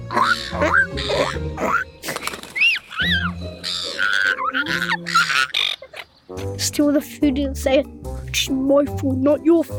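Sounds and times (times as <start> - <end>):
seagulls squawking and squabbling, begging for food at Parliament House in Canberra: 0.0 - 6.3
speech: 0.5 - 1.9, 6.8 - 9.7.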